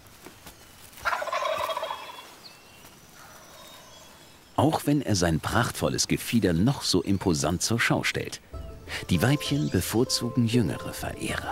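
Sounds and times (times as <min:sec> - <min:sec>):
male turkey gobbling during courtship display: 0:01.0 - 0:02.4
speech: 0:04.6 - 0:11.5.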